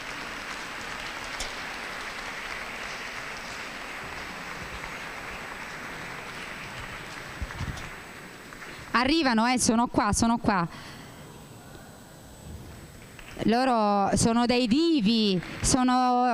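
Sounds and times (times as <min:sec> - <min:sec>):
audience applause welcoming children on stage: 0:00.0 - 0:09.2, 0:12.9 - 0:13.5, 0:14.4 - 0:16.3
speech: 0:09.0 - 0:11.0, 0:13.4 - 0:16.3.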